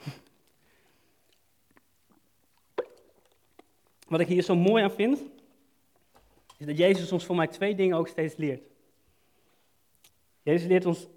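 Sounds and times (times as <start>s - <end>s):
person sipping a drink: 0.0s - 4.1s
swallow: 1.2s - 4.0s
faint mouth clicks: 1.2s - 4.1s
speech: 4.1s - 5.4s, 6.6s - 8.7s, 10.4s - 11.1s.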